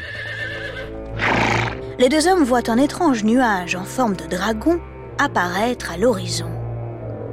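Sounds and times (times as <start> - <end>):
ridden horse whinnying at the top of a huge cliff: 0.0 - 1.9
speech: 2.0 - 6.6.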